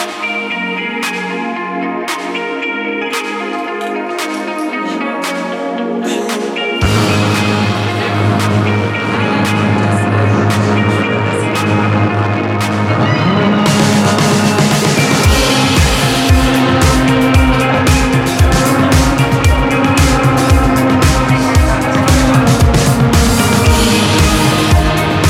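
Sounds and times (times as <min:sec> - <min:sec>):
dense distorted guitars with sustained chords: 0:00.0 - 0:25.2
loud bright pop song by a solo artist: 0:00.0 - 0:25.2
driving drum beat: 0:06.8 - 0:09.7, 0:13.6 - 0:25.2.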